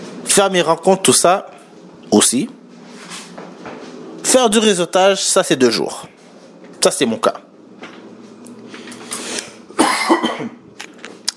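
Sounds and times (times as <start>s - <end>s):
speech: 0.4s - 2.6s, 4.3s - 6.2s, 6.8s - 7.5s
person coughing: 9.8s - 10.6s
throat clearing: 9.8s - 10.6s.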